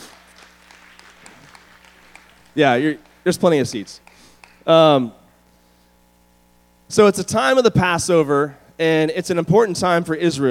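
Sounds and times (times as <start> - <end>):
small audience applause: 0.0 - 4.6
speech: 2.6 - 5.2, 6.9 - 10.4.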